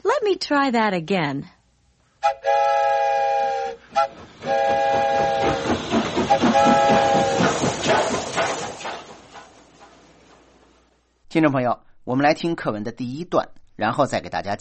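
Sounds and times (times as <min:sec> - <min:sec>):
speech: 0:00.2 - 0:01.6, 0:11.3 - 0:14.6
train-like whistle blowing: 0:02.2 - 0:07.6.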